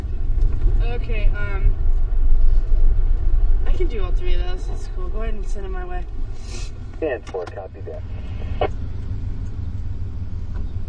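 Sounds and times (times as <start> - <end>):
deep rumble of a car's interior while driving: 0.0 - 10.8
faint road noise: 0.0 - 10.8
speech: 1.0 - 1.9, 3.7 - 8.8.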